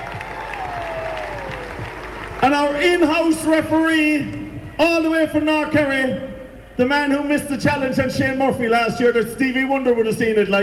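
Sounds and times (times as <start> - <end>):
crowd applauding a man being introduced: 0.0 - 2.8
speech: 2.4 - 10.6.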